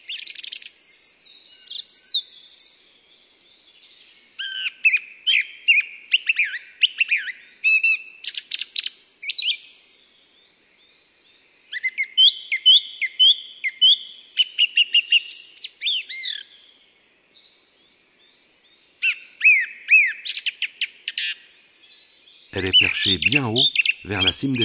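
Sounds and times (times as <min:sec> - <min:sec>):
song thrush singing: 0:00.0 - 0:24.6
speech: 0:22.6 - 0:24.6.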